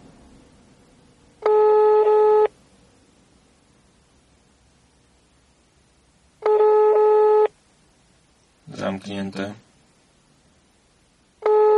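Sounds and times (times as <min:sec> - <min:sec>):
telephone tone of an unanswered call: 0:01.4 - 0:02.6, 0:06.4 - 0:07.6, 0:11.4 - 0:11.7
speech: 0:08.8 - 0:09.7.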